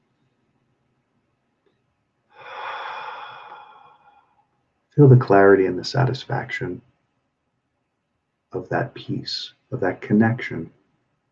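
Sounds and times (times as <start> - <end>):
deep breath drawn in during a guided meditation: 2.3 - 4.4
speech: 5.0 - 6.9, 8.6 - 10.8.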